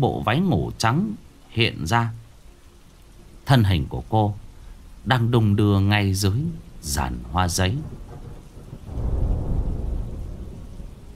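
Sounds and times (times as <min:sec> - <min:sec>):
speech: 0:00.0 - 0:02.2, 0:03.5 - 0:04.4, 0:05.0 - 0:08.0
rain in a rainstorm: 0:00.0 - 0:11.1
thunder rumble during a rainstorm: 0:04.4 - 0:11.1.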